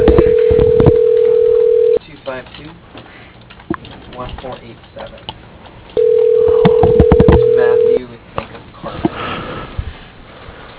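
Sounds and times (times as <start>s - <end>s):
telephone dial tone: 0.0s - 2.0s, 6.0s - 8.0s.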